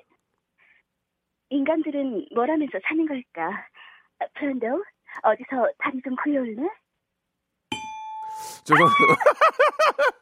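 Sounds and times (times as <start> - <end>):
speech: 1.5 - 6.8, 8.6 - 10.1
ding-dong-dang chime for a correct answer: 7.7 - 8.6
laughter: 8.8 - 10.1.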